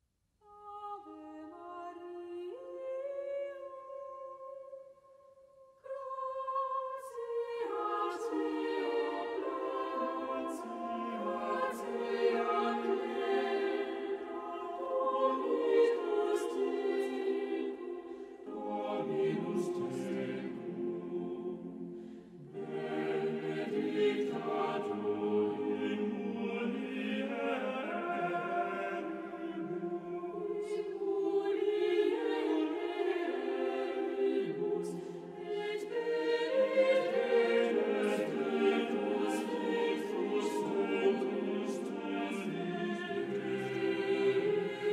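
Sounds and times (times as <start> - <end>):
singers singing a hymn: 5.8 - 44.9.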